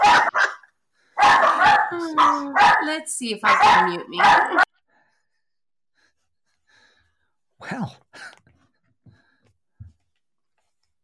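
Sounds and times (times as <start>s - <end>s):
dog barking at a passing dog on a tourist street: 0.0s - 4.7s
speech: 2.0s - 4.6s.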